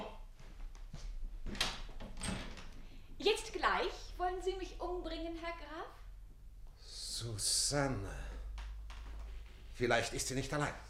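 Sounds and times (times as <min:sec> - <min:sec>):
door being unlocked and opened with its latch key: 0:01.5 - 0:02.7
speech: 0:03.2 - 0:06.0, 0:07.2 - 0:08.3, 0:09.8 - 0:10.8.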